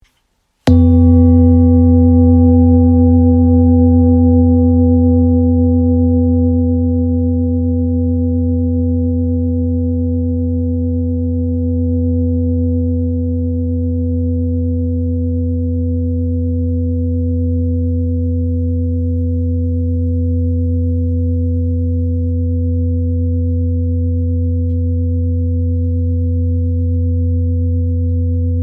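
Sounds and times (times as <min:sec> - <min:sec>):
therapeutic singing bowl in F: 0:00.7 - 0:28.6.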